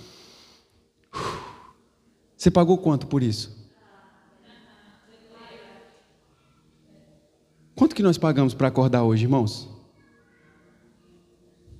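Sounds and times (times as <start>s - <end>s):
deep breath in: 0.0s - 1.9s
speech: 2.4s - 3.6s, 7.8s - 9.7s.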